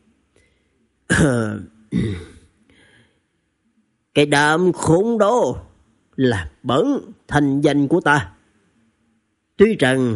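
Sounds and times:
harsh dry coughing from a weary man: 1.1 - 2.5
speech: 1.2 - 2.3, 4.2 - 8.4, 9.6 - 10.1.

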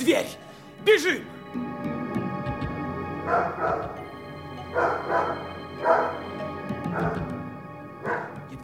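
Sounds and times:
steady tonal background: 0.0 - 8.6
speech: 0.1 - 1.9, 3.3 - 4.0, 4.7 - 6.1
dog barking: 3.2 - 4.0, 4.7 - 6.3, 6.9 - 7.4, 8.0 - 8.4.

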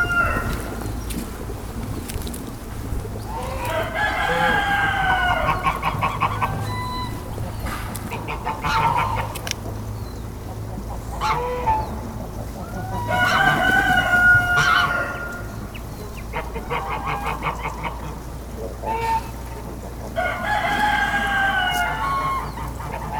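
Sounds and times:
rooster crowing: 0.0 - 0.8, 3.3 - 7.8, 12.7 - 15.5, 20.2 - 22.6
geese honking: 0.0 - 23.1.

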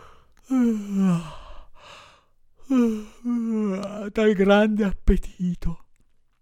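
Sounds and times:
person imitating yawns of a hungry character: 0.0 - 1.7, 2.6 - 4.1
speech: 4.1 - 5.8.

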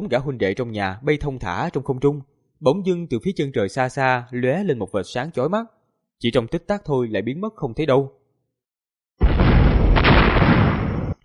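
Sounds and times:
speech: 0.0 - 8.2
heavy explosions booming: 9.2 - 11.2.

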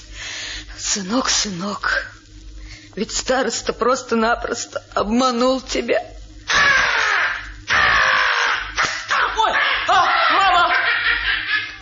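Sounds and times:
speech: 0.8 - 2.1, 3.0 - 6.1
crow cawing: 6.5 - 10.2
laughter: 8.0 - 11.7.

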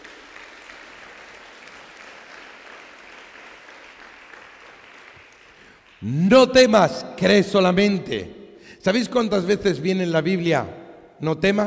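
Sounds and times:
applause in a church: 0.0 - 6.2
speech: 6.0 - 11.6.

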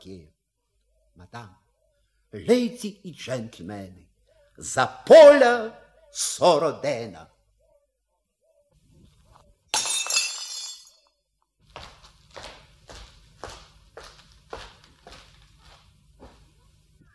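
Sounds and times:
speech: 0.0 - 0.4, 1.2 - 1.6, 2.3 - 7.3
wine glass being smashed after a toast: 9.7 - 11.1
steady evenly spaced footsteps: 11.6 - 16.7.

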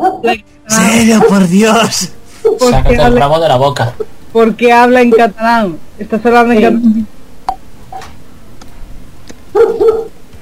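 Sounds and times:
speech: 0.2 - 7.2, 9.6 - 10.2
dog barking: 9.5 - 10.1.

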